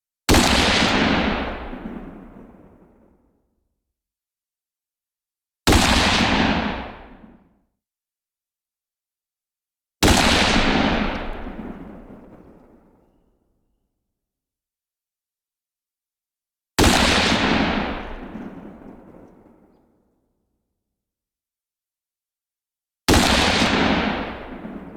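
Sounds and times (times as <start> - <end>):
rifle shots echoing: 0.4 - 2.7, 5.7 - 7.3, 10.0 - 12.9, 16.8 - 19.8, 23.1 - 24.9.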